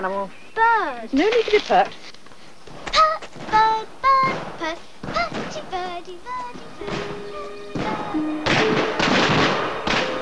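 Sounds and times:
speech: 0:00.0 - 0:02.1
gunshots from a hunting party's shooting: 0:02.7 - 0:10.2.

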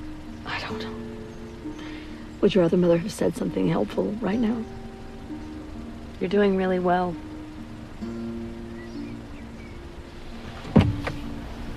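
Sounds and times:
car idling: 0:00.0 - 0:11.7
speech: 0:00.7 - 0:01.1, 0:02.4 - 0:04.8, 0:06.2 - 0:07.3
car door clunk: 0:10.3 - 0:11.7.

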